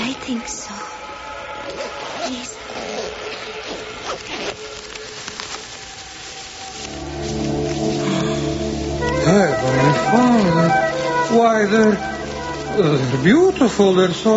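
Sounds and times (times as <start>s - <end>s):
speech: 0.2s - 1.0s, 1.7s - 4.9s, 9.6s - 12.1s, 12.8s - 14.3s
rustling: 1.6s - 14.3s
clothing zippers being zipped: 1.8s - 4.8s.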